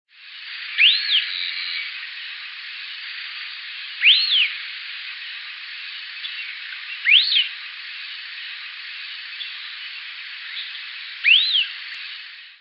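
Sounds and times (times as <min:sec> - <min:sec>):
steady background hiss: 0:00.1 - 0:12.6
long-tailed tyrant Colonia colonus giving thin whistled notes: 0:00.6 - 0:02.1, 0:03.8 - 0:04.7, 0:06.1 - 0:07.6, 0:09.2 - 0:12.2.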